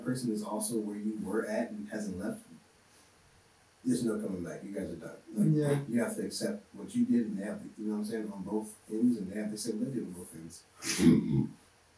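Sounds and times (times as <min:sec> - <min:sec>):
speech: 0:00.1 - 0:02.5, 0:03.8 - 0:11.6
man clearing his throat with a short low guttural cough: 0:10.8 - 0:11.4.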